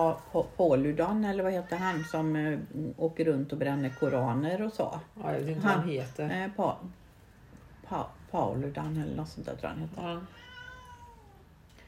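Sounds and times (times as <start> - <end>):
speech: 0.0 - 7.0, 7.9 - 10.4
low hum: 0.0 - 11.8
cat meowing: 1.6 - 2.4, 3.7 - 4.5, 10.2 - 11.5.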